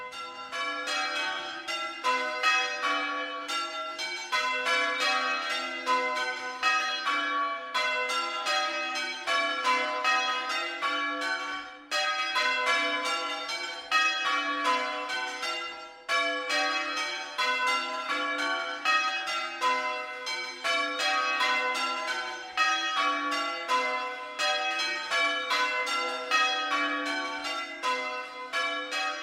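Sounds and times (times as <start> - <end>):
peal of pre-Reformation church bells ringing: 0.0 - 29.2.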